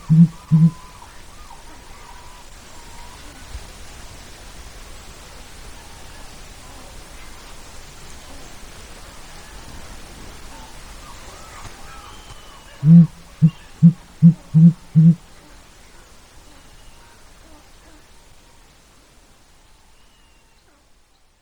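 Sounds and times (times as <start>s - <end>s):
sooty grouse hooting in Glacier Bay, Alaska: 0.0s - 1.0s, 11.4s - 15.2s
faint bird calls: 0.0s - 3.2s, 10.6s - 15.6s.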